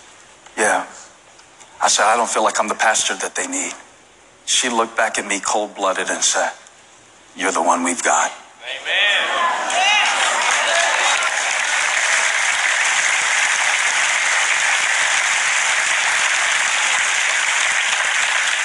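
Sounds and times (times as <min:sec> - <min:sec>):
speech: 0:01.9 - 0:03.9, 0:04.5 - 0:06.6, 0:07.4 - 0:09.9
large audience clapping: 0:09.6 - 0:18.6.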